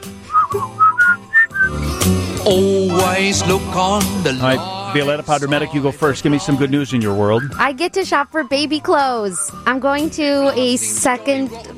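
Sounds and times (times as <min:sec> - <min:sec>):
person whistling a tune: 0:00.2 - 0:02.1, 0:07.4 - 0:07.6
speech: 0:00.5 - 0:00.8, 0:02.4 - 0:11.7.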